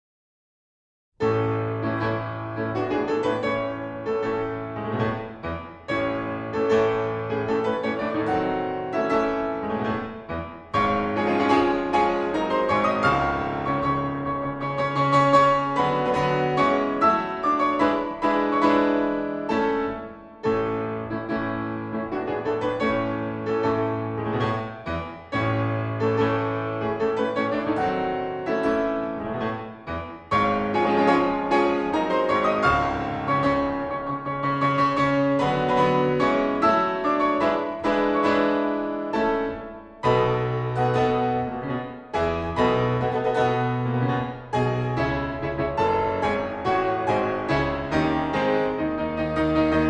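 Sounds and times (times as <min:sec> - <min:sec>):
piano: 0:01.2 - 0:49.8.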